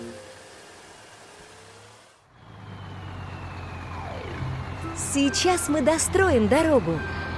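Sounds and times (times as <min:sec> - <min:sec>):
small police toy car motor whirring up a plastic track: 0:00.0 - 0:02.2
speech: 0:05.0 - 0:07.2.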